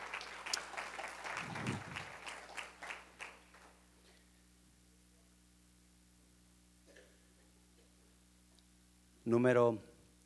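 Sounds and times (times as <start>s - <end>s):
audience applauding: 0.0s - 3.9s
speech: 9.3s - 9.9s.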